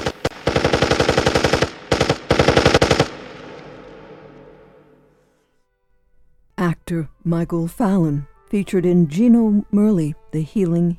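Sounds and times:
automatic gunfire bursts: 0.0s - 4.3s
speech: 6.9s - 10.9s.

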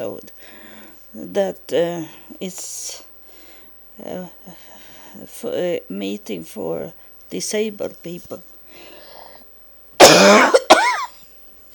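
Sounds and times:
speech: 0.0s - 3.1s, 4.0s - 8.9s
person coughing harshly: 10.0s - 11.2s.

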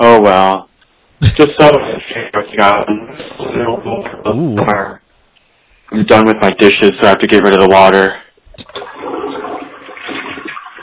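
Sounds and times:
speech: 0.0s - 5.0s, 5.9s - 9.2s
toilet flushing: 8.8s - 10.8s.

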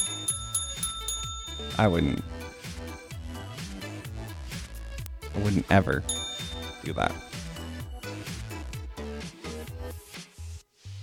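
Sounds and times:
bell struck and ringing: 0.0s - 2.8s, 6.0s - 8.2s
speech: 1.6s - 2.3s, 5.4s - 6.2s, 6.8s - 7.3s.

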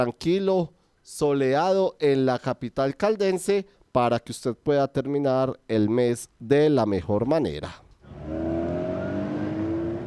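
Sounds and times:
speech: 0.0s - 7.8s
car engine revving: 8.0s - 10.0s.

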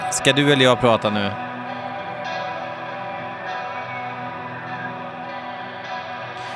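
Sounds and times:
distorted heavy metal music with thick guitar: 0.0s - 6.5s
speech: 0.2s - 1.5s.

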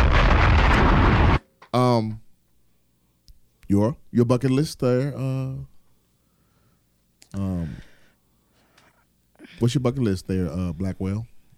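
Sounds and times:
bomb explosion sound effect: 0.0s - 1.4s
speech: 1.7s - 2.2s, 3.7s - 5.7s, 7.3s - 7.9s, 9.6s - 11.3s.

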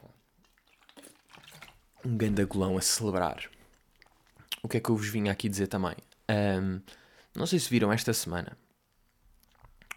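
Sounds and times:
person gulping down a drink of water: 0.0s - 4.8s
speech: 2.0s - 3.6s, 4.6s - 8.6s.

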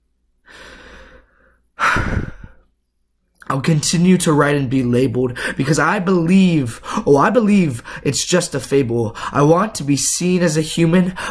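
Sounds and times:
person panting heavily: 0.5s - 2.6s, 5.4s - 5.6s, 6.7s - 7.1s, 7.8s - 8.1s, 9.1s - 9.4s
speech: 3.5s - 11.2s.

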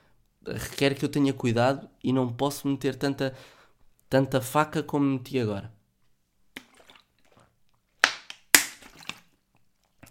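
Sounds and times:
speech: 0.4s - 5.8s
person drinking water with wet gulps: 6.5s - 7.8s, 8.6s - 10.0s.

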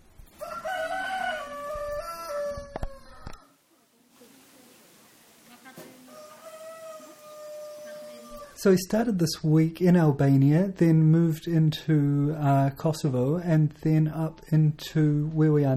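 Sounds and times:
rooster crowing in the fortress at Berat in Albania: 0.4s - 3.6s, 6.1s - 8.6s
speech: 8.6s - 15.7s.

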